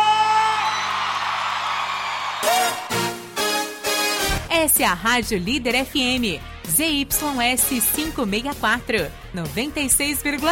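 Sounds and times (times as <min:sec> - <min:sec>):
crowd shouting, whooping and cheering: 0:00.0 - 0:03.8
speech: 0:04.6 - 0:10.4.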